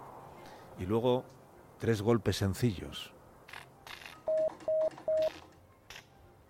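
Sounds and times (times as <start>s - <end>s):
speech: 0.8s - 3.2s
short electronic Morse code beeps: 4.3s - 5.4s.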